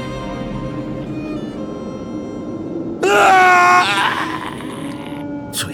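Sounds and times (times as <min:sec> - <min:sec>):
person screaming in terror across the moor: 0:03.0 - 0:05.7.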